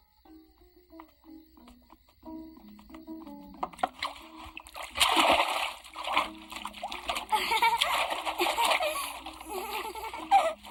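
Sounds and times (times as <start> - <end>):
water splashing and sloshing as a child washes himself: 3.6 - 10.6
child giggling: 7.3 - 10.6.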